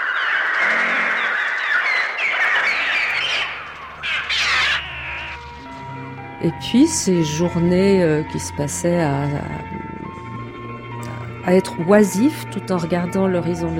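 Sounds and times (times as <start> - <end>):
shrill bird cries imitated by a trautonium electronic instrument: 0.2 - 5.7
speech: 6.4 - 9.9, 11.5 - 13.7.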